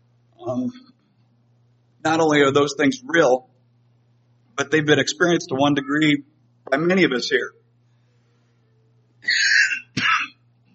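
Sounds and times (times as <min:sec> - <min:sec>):
faint low hum: 0:00.0 - 0:10.7
speech: 0:00.4 - 0:01.0, 0:02.0 - 0:03.5, 0:04.6 - 0:07.6, 0:09.2 - 0:09.6
raspy coughs: 0:09.2 - 0:10.4.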